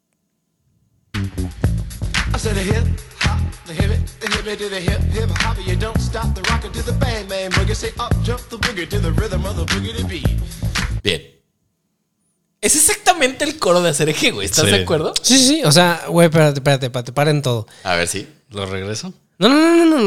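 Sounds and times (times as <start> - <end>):
speech: 2.3 - 11.4, 12.6 - 20.0
old-school hip hop track with rapped verse over bass-heavy groove: 2.4 - 10.4.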